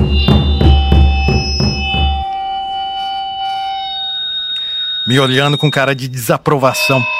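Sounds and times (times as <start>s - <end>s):
loud booming bass drum struck in a regular rhythm: 0.0s - 2.3s
high-pitched audio feedback tones from a microphone: 0.0s - 7.1s
speech: 5.1s - 7.1s.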